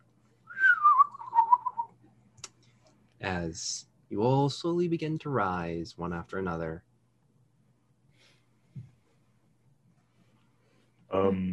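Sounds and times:
person whistling an imitation of bird calls at sunrise: 0:00.5 - 0:01.9
speech: 0:03.2 - 0:06.9, 0:11.2 - 0:11.5.

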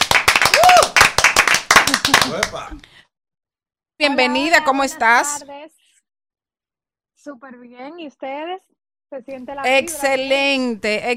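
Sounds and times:
people cheering: 0:00.0 - 0:02.7
group applauding with dense irregular clapping: 0:00.0 - 0:02.8
speech: 0:02.1 - 0:03.0, 0:04.0 - 0:05.8, 0:07.2 - 0:11.1.

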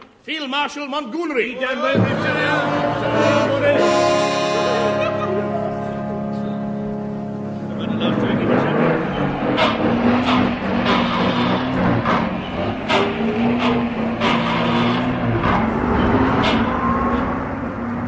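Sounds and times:
speech: 0:00.2 - 0:04.1
laughter: 0:01.6 - 0:06.6
heavy diesel engine revving as vehicle pulls away: 0:02.0 - 0:18.0.

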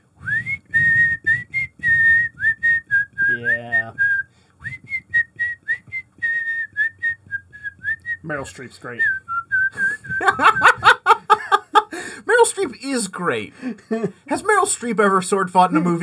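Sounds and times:
low hum: 0:00.0 - 0:16.0
person whistling a tune: 0:00.2 - 0:08.3, 0:08.9 - 0:10.7
speech: 0:08.3 - 0:10.9, 0:12.4 - 0:16.0
laughter: 0:09.8 - 0:12.2, 0:13.6 - 0:14.2.

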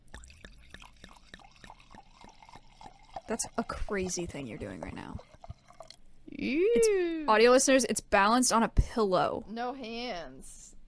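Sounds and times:
wine glugging out of a bottle into a dirty wine glass: 0:00.0 - 0:06.1
speech: 0:03.3 - 0:05.3, 0:06.4 - 0:10.7.

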